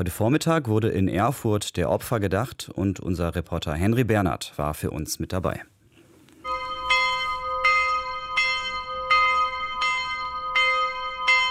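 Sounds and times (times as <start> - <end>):
speech: 0.0 - 5.7
large cast school bell rung by a student at a memorial: 6.4 - 11.5.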